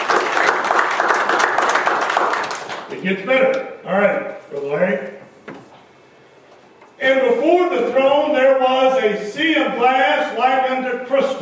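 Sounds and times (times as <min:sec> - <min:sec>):
congregation applause at a church worship service: 0:00.0 - 0:02.9
speech: 0:03.0 - 0:05.2, 0:07.0 - 0:11.4.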